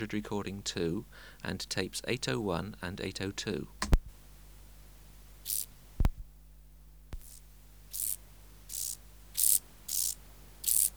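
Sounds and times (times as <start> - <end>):
speech: 0.0 - 4.0
common field grasshopper Chorthippus brunneus rasping chirps: 5.4 - 5.8, 7.2 - 10.9.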